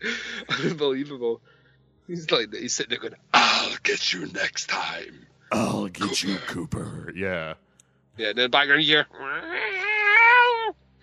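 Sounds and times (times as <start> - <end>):
speech: 0.0 - 7.6, 8.2 - 9.8
drawn-out cat meow: 9.4 - 10.7.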